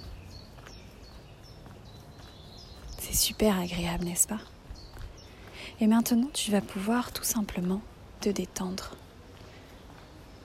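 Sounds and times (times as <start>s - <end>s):
birds singing with short high chirps: 0.0s - 10.4s
steady outdoor hiss and low rumble: 2.4s - 10.4s
speech: 3.1s - 4.6s, 5.8s - 9.0s.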